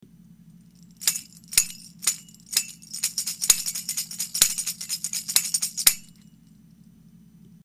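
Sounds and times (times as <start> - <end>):
tambourine made from a milk carton and bottle caps: 0.7 - 6.3.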